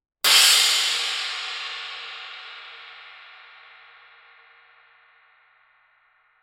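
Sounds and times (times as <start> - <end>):
20-inch medium crash cymbal struck on edge: 0.2 - 5.9.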